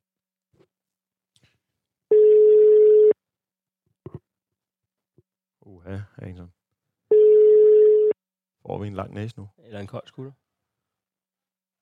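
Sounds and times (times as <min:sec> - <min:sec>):
telephone ringing tone while placing a call: 0:02.1 - 0:03.2, 0:07.1 - 0:08.2
speech: 0:08.8 - 0:10.4.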